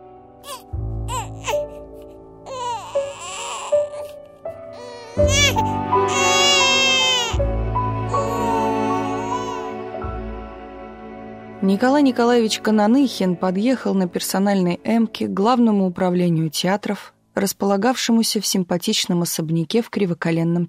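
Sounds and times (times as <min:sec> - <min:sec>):
newborn baby crying at birth: 0:00.4 - 0:09.9
speech: 0:11.7 - 0:20.6.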